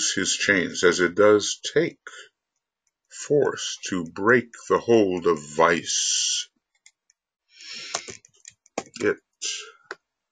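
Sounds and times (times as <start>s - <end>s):
speech: 0.2s - 2.3s, 3.2s - 6.5s, 9.0s - 9.7s
faint breathy noise: 7.5s - 8.2s
keyboard typing clicks: 7.9s - 9.1s.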